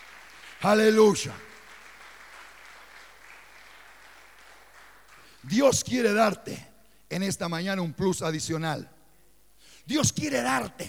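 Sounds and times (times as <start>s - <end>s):
crowd applauding in a large room: 0.0s - 5.4s
speech: 0.6s - 1.5s, 5.5s - 9.0s, 9.8s - 10.8s.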